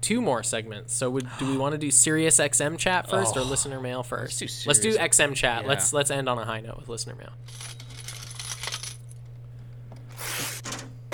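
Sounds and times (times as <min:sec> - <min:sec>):
speech: 0:00.0 - 0:07.8
coins dropping and jingling: 0:07.4 - 0:09.3.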